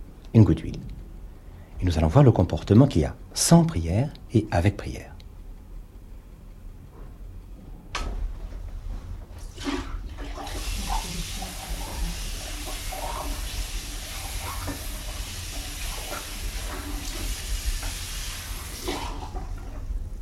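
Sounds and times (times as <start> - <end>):
speech: 0.3 - 0.9, 1.8 - 5.1
clean water being poured in a steady hissing stream: 9.4 - 19.9.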